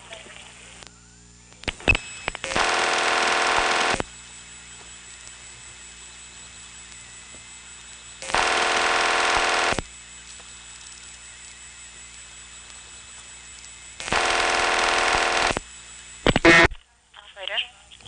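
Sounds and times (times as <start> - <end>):
faint telephone line hum: 0.1 - 16.9
2600 Hz tone burst: 1.8 - 4.1, 8.2 - 9.8, 14.0 - 15.6
telephone trunk line ringing back: 2.5 - 4.0, 8.3 - 9.8, 14.0 - 15.6.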